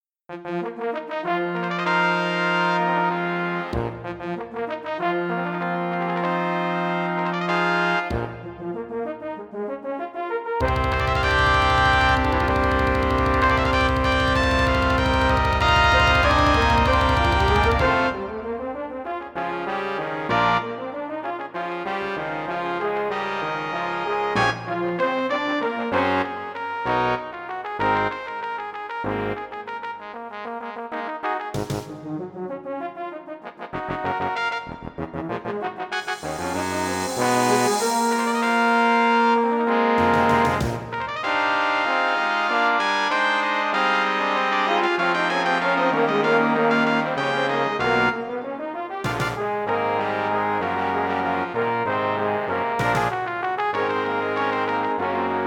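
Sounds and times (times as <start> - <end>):
MIDI fanfare: 0.3 - 28.6, 31.4 - 55.4.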